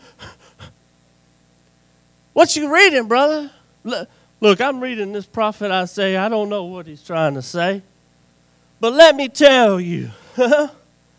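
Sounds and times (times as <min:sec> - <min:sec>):
voice imitating heavy panting: 0:00.0 - 0:00.8
speech: 0:02.4 - 0:07.9, 0:08.8 - 0:10.8.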